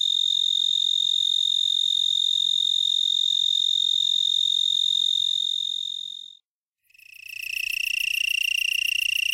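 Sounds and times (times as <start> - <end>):
black-horned tree cricket trilling: 0.0 - 9.3.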